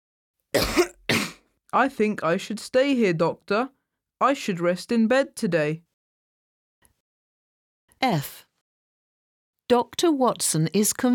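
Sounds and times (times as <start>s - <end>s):
speech: 0.5s - 1.0s, 1.7s - 5.9s, 8.0s - 8.4s, 9.7s - 11.1s
person with a sore throat coughing: 0.6s - 1.4s.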